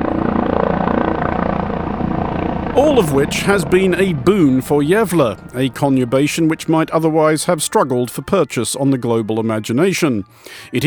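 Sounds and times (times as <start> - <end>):
loud dense helicopter engine roar: 0.0 - 7.2
helicopter rotor chopping overhead: 0.0 - 7.8
speech: 2.8 - 10.8.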